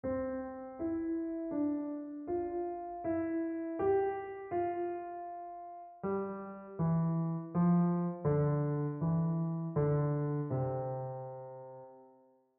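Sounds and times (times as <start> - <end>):
keyboardist playing an exercise: 0.0 - 12.0.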